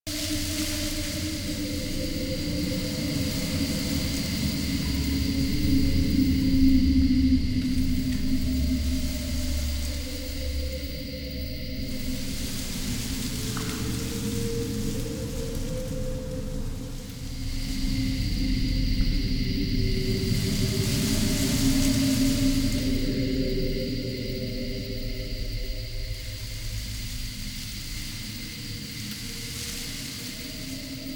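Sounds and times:
scared sad forest ambience loop: 0:00.1 - 0:31.1.

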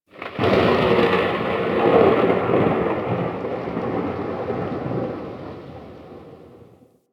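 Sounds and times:
exterior thunder claps: 0:00.1 - 0:06.8.

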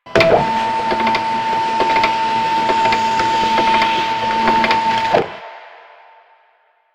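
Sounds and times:
office fax machine: 0:00.0 - 0:05.4.

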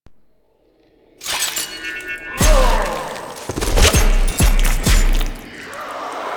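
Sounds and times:
knife attack slashing: 0:01.2 - 0:06.1.

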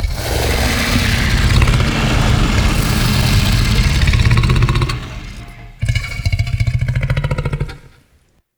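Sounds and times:
infested pit monster exhaling: 0:00.0 - 0:08.2.

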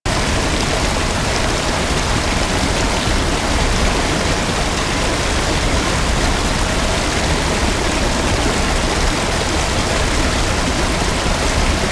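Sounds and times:
huge forest waterfall: 0:00.1 - 0:11.8.

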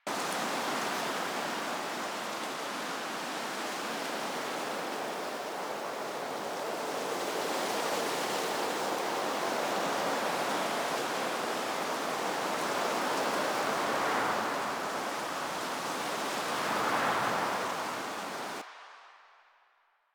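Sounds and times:
wind in trees: 0:00.0 - 0:19.4.

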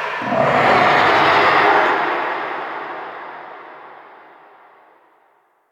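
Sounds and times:
spawn warning vocal: 0:00.2 - 0:03.4.

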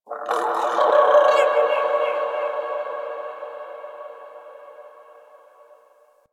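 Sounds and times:
distant creatures in an alien landscape ambience: 0:00.0 - 0:06.2.

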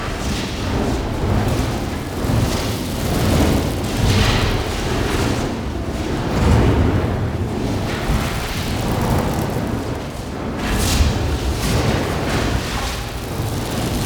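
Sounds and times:
flamethrower: 0:00.1 - 0:14.0.

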